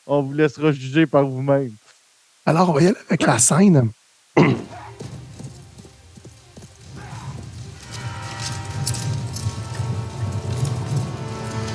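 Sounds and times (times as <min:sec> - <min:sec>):
speech: 0:00.0 - 0:04.8
horse hooves clip-clopping in a film scene: 0:04.6 - 0:11.7.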